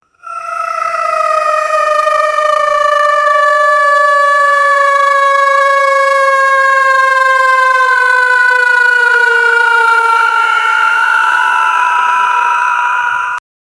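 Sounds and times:
goblin dying cry: 0.2 - 13.4.

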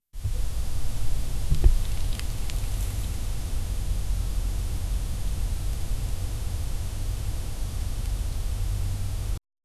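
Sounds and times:
forest ambience: 0.2 - 9.4.

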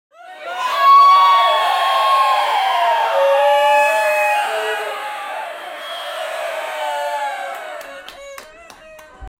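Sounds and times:
audience screaming and cheering in a small room: 0.2 - 8.2.

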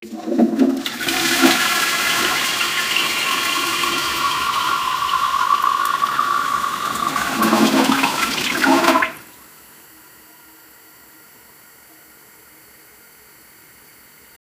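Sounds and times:
toilet flushing: 0.0 - 9.5.

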